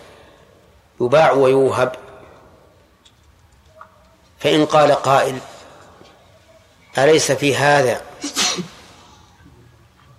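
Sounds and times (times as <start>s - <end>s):
speech: 1.0s - 2.1s, 4.4s - 5.5s, 6.9s - 8.7s
person sneezing: 8.2s - 9.1s.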